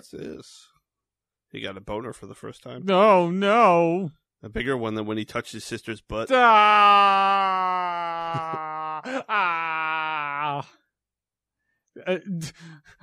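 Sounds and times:
speech: 0.0 - 0.8, 1.5 - 10.8, 12.0 - 13.0
man moaning wail in film audio: 6.3 - 10.7.

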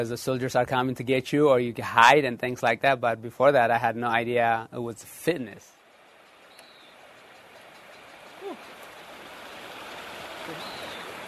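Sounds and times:
speech: 0.0 - 5.8
cold creek water rushing: 5.4 - 11.2.

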